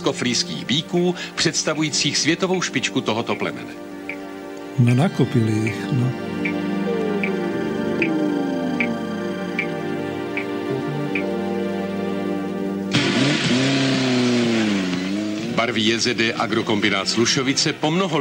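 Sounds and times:
speech: 0.1 - 3.9, 4.8 - 6.6, 15.6 - 18.2
steady ticking: 3.0 - 12.9
racing car engines revving and accelerating at a motor racing competition: 6.4 - 17.8.

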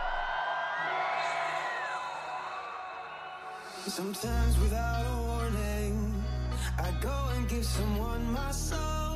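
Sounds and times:
large concert crowd screaming and cheering in Mexico: 0.0 - 4.9
speech: 3.9 - 5.8, 6.8 - 9.0.

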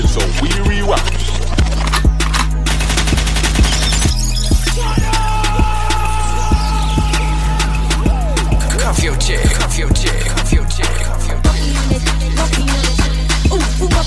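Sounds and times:
bass-heavy music: 0.0 - 14.0
gunshot sound effects: 1.6 - 4.2.

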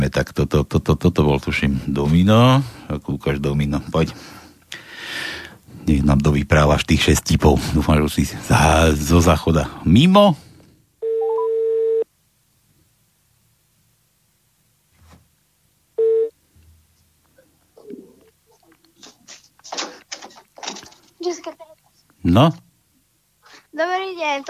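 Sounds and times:
speech: 0.0 - 4.4, 5.2 - 10.4, 22.2 - 22.6, 23.8 - 24.4
telephone call ringing on the line: 11.0 - 12.0, 16.0 - 16.4.

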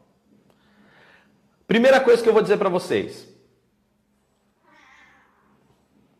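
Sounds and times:
faint low hum: 0.0 - 6.1
speech: 1.7 - 3.3
pet cat meowing: 4.6 - 5.6.

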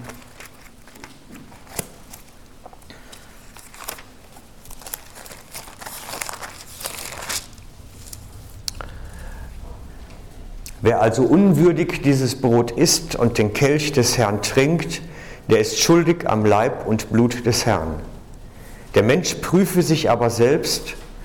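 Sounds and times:
pages of a book being leafed through: 0.0 - 8.2
speech: 10.9 - 18.1, 18.9 - 21.0.

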